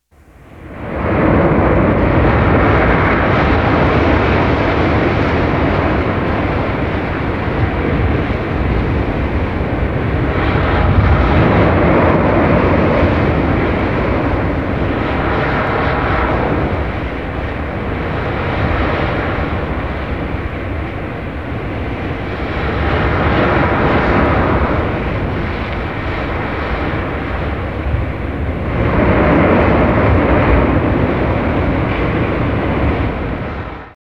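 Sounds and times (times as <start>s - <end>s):
tsunami wave roaring: 0.6s - 33.9s.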